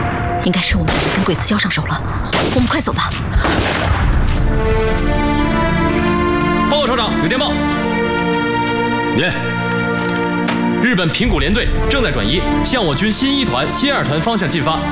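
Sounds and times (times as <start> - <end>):
rapid scattered gunshots: 0.8 - 4.8
sustained musical drone: 4.6 - 14.8.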